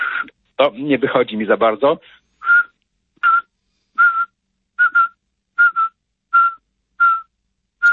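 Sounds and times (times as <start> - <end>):
speech: 0.6 - 2.2
person whistling an imitation of the Eurasian pygmy owl's call: 2.4 - 7.9.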